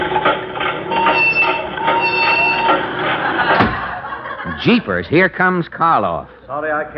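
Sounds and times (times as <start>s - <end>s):
dehydrator machine starting up with rumble, whine and clatter: 0.0s - 3.6s
laughter: 2.5s - 6.5s
speech: 4.6s - 6.9s.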